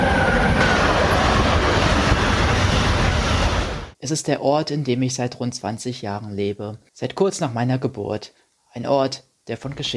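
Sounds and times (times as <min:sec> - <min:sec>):
train rumbling along railway tracks: 0:00.0 - 0:04.0
speech: 0:04.1 - 0:09.9.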